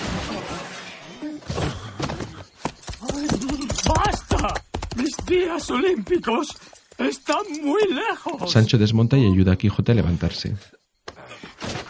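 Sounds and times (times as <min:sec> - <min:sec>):
horses galloping away: 0:02.6 - 0:07.8
speech: 0:05.3 - 0:10.8.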